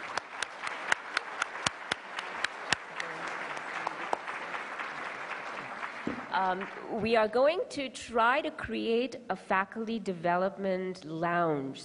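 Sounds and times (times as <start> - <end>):
audience applause: 0.0 - 7.0
speech: 6.3 - 11.8.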